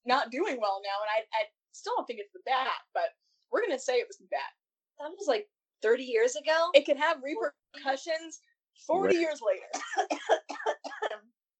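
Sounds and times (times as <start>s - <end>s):
speech: 0.1s - 11.3s
raspy coughs: 9.7s - 11.3s.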